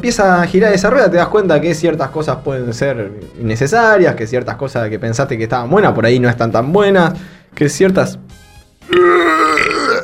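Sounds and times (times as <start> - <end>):
speech: 0.0 - 10.0
drawn-out burp: 8.8 - 10.0.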